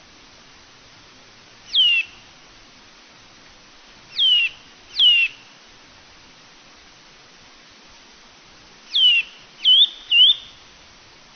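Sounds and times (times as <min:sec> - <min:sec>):
Eurasian bullfinch soft whistled piping notes: 0:01.7 - 0:02.2, 0:04.1 - 0:05.4, 0:08.9 - 0:10.6.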